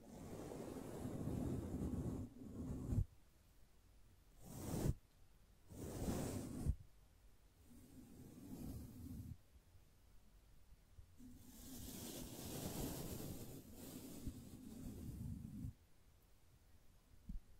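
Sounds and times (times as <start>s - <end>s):
gentle brushing strokes: 0.0s - 3.2s, 4.3s - 6.9s, 7.6s - 9.5s, 11.2s - 15.9s.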